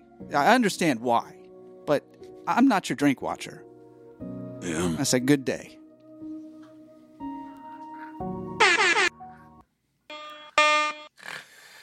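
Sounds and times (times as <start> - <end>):
speech: 0.2 - 5.8
loud brassy air horn blasts at shifting pitches: 10.1 - 11.1.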